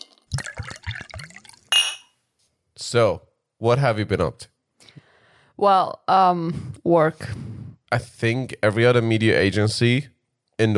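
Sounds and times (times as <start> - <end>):
whiskey glasses clinking in a toast: 0.3 - 2.1
speech: 2.9 - 4.5, 5.6 - 10.7.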